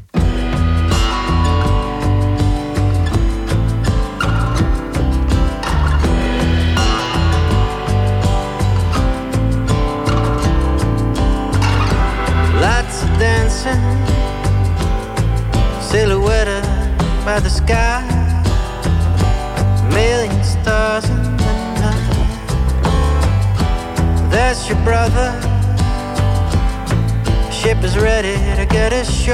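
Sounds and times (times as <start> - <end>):
loud full-band pop track with heavy bass: 0.2 - 29.3.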